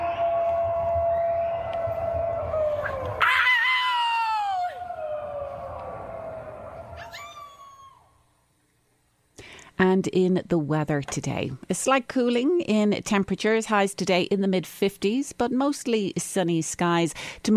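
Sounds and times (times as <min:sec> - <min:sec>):
neighbours howling at the moon from balconies and gardens in Denver: 0:00.0 - 0:08.2
speech: 0:09.8 - 0:17.5.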